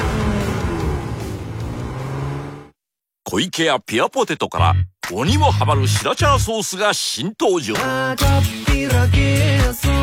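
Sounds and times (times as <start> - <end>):
car engine revving: 0.0 - 2.8
speech: 3.3 - 10.0.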